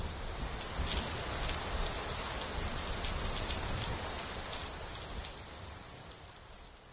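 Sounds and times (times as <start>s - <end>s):
raindrops pattering and ticking against a surface: 0.0s - 6.8s.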